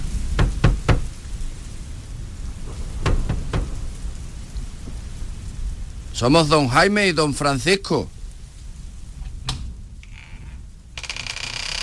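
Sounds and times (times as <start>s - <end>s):
steady rain pattering: 0.0s - 11.8s
firm resonant knocks on a wide closed door in Seville: 0.4s - 1.1s, 3.0s - 3.7s
speech: 6.2s - 8.1s.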